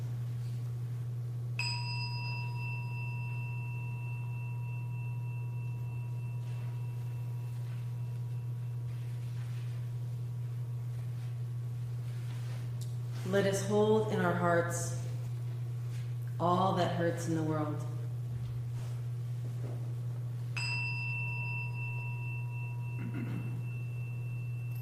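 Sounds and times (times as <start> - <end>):
low electrical hum: 0.0 - 24.7
meditation chime ringing: 1.6 - 10.4, 20.4 - 24.7
speech: 13.3 - 15.0, 16.4 - 17.9.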